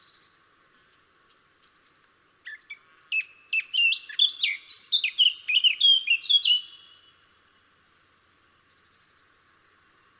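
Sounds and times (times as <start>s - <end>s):
Sylvia atricapilla Eurasian blackcap singing: 2.5s - 6.9s.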